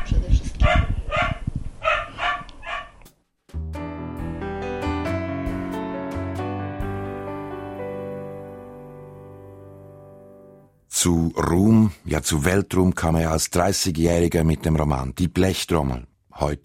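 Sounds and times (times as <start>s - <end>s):
dog barking: 0.0s - 3.0s
music: 3.5s - 10.8s
speech: 11.0s - 16.6s.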